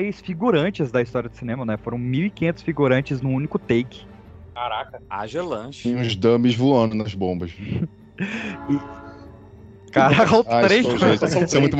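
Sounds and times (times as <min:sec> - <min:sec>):
speech: 0:00.0 - 0:09.0, 0:09.9 - 0:11.7
laughter: 0:07.4 - 0:09.1, 0:10.0 - 0:11.7
train horn-like blast: 0:08.2 - 0:09.7.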